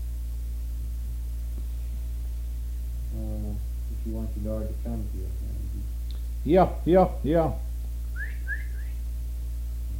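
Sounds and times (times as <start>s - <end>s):
steady low hum: 0.0s - 9.9s
speech: 4.3s - 7.7s
person whistling short rising notes: 8.2s - 9.0s.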